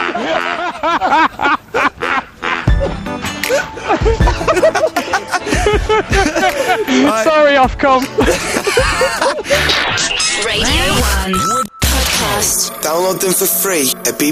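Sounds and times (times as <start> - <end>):
laughter: 0.0 - 7.3, 8.1 - 9.9
speech: 0.2 - 1.6, 7.0 - 11.7, 12.4 - 14.3
duck quacking: 2.0 - 2.9.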